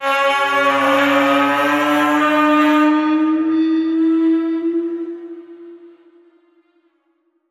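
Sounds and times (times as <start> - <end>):
bizarre bending horn note: 0.0 - 6.8.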